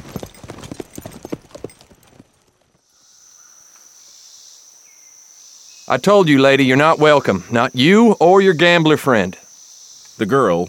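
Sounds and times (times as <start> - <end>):
crickets chirring: 0.0 - 2.2, 2.8 - 10.6
horse hooves clip-clopping as a rider heads off toward a cattle herd: 0.0 - 2.8
speech: 5.9 - 9.4, 10.2 - 10.6.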